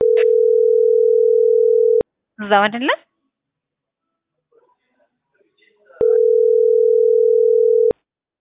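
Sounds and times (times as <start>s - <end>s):
telephone line tone after a call is cut off: 0.0s - 2.0s, 6.0s - 8.0s
speech: 2.4s - 3.0s.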